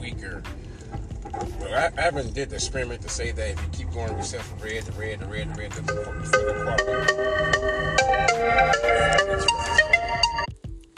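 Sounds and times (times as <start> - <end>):
speech: 1.4 - 9.7
phone ringtone melody of electronic notes from an incoming call: 5.8 - 10.5.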